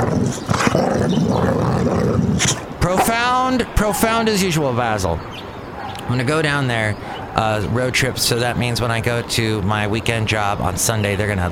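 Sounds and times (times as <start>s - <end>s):
Boxer dog growling: 0.0s - 2.8s
speech: 3.5s - 5.5s, 6.1s - 11.5s.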